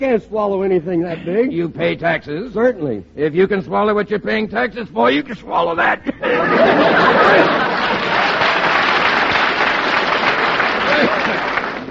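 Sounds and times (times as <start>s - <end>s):
speech: 0.0s - 8.1s
laughter: 5.2s - 9.5s, 10.6s - 11.8s
large indoor crowd applauding: 6.6s - 11.8s.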